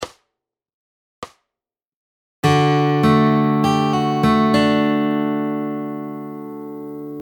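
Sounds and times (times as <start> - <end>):
fingerpicking lick variation: 2.4 - 7.2.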